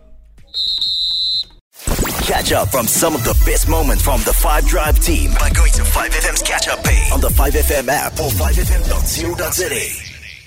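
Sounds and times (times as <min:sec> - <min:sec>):
referee's whistle blown to end match: 0:00.5 - 0:01.6
speech: 0:02.3 - 0:10.0.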